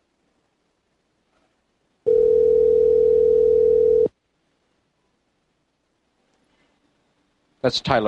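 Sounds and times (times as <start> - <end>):
telephone dial tone while placing a call: 2.1 - 4.1.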